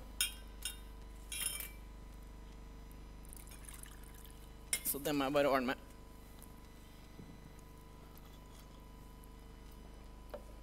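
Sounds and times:
glass and utensils clinking: 0.2s - 1.8s
water being poured into a glass: 3.3s - 4.5s
speech: 4.9s - 5.8s.

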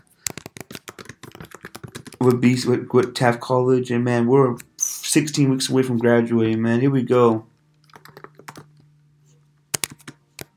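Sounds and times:
typing on a computer keyboard: 0.0s - 3.2s, 7.8s - 8.9s, 9.7s - 10.5s
speech: 2.2s - 7.5s
steady low hum: 2.2s - 10.5s.

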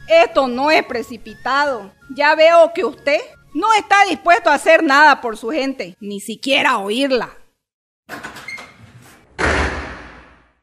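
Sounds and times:
speech: 0.1s - 7.4s
door pulled with a rattling scrape: 8.1s - 10.6s.

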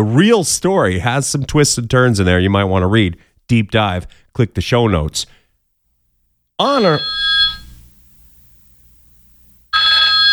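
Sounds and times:
speech: 0.0s - 5.4s, 6.6s - 7.4s
cell phone ringing with a bright electronic tone: 6.6s - 7.8s, 9.7s - 10.3s.

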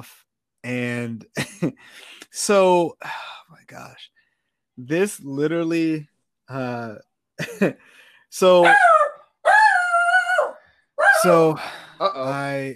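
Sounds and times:
speech: 0.0s - 4.2s, 4.8s - 9.0s, 11.2s - 12.7s
dog barking and yowling in an apartment: 8.6s - 11.6s.

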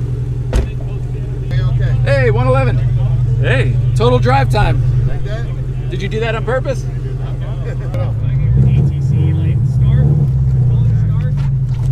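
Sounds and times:
new stock 718 Boxster sports car engine droning from inside the cabin: 0.0s - 11.8s
speech: 2.2s - 7.0s.

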